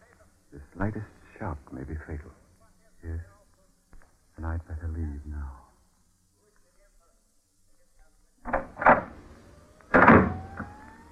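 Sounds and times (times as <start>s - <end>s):
speech: 0.8s - 2.4s, 3.0s - 3.4s, 4.4s - 5.6s
door slamming with a heavy booming ringing tail: 8.5s - 9.2s, 9.9s - 10.8s.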